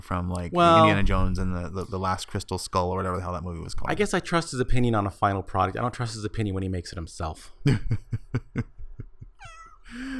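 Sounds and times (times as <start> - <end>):
speech: 0.0 - 8.7, 9.9 - 10.1
small female pet cat meowing: 9.4 - 9.8.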